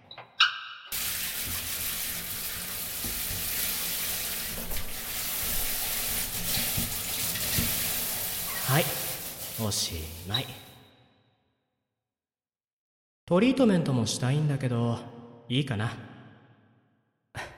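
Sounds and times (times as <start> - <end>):
running water rinsing shampoo out of hair: 0.9 - 10.8
speech: 8.7 - 9.0, 9.6 - 10.7, 13.3 - 16.1.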